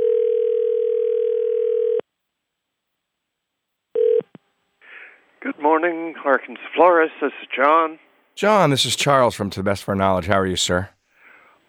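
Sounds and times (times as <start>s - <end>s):
electronic telephone ring tone on outgoing call: 0.0s - 2.0s, 4.0s - 4.3s
speech: 5.7s - 11.0s.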